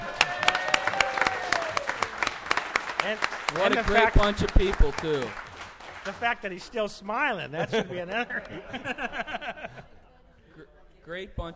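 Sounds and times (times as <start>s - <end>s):
small group of vintage trailer campers clapping: 0.0s - 6.8s
speech: 3.0s - 5.4s, 6.0s - 10.0s, 11.1s - 11.5s
laughter: 7.4s - 10.6s.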